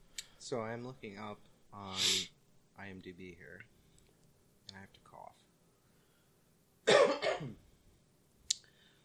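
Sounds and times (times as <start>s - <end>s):
speech: 0.5s - 3.8s, 4.7s - 5.4s
person coughing or clearing throat harshly: 6.9s - 7.6s.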